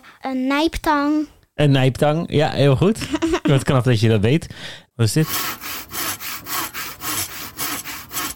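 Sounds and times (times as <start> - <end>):
speech: 0.2 - 5.8
hand saw cutting through wood: 5.2 - 8.3.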